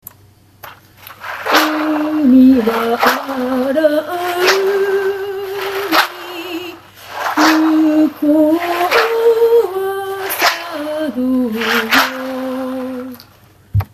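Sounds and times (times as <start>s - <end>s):
maracas shaking: 0.6s - 13.4s.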